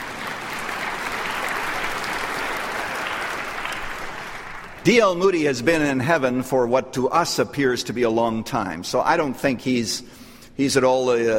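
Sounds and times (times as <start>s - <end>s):
crowd applauding: 0.0s - 5.3s
speech: 4.8s - 11.3s.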